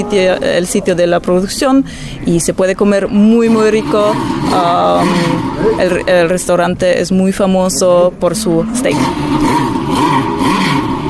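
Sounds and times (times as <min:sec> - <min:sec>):
speech: 0:00.0 - 0:10.5
sports car engine revving: 0:03.2 - 0:11.0.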